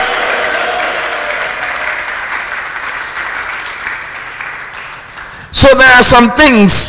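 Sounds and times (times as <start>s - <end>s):
audience shouting: 0.0s - 2.1s
large audience applause: 0.0s - 5.4s
speech: 5.6s - 6.8s.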